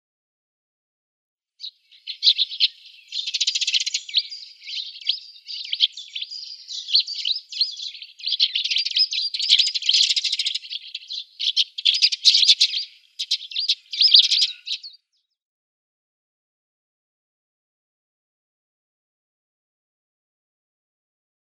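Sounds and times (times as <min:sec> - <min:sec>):
Eurasian tree sparrow chirping: 0:01.6 - 0:15.4.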